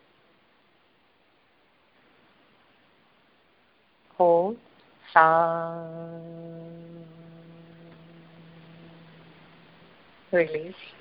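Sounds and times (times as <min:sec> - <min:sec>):
speech: 0:04.2 - 0:06.2, 0:10.3 - 0:10.9
person humming a sustained low note during a breathing exercise: 0:05.2 - 0:09.9.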